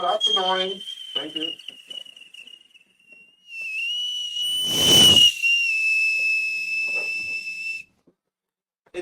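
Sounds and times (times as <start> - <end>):
shrill whistle blown to call dogs: 0.0 - 7.9
speech: 0.1 - 1.8
rush of noise: 4.5 - 5.3.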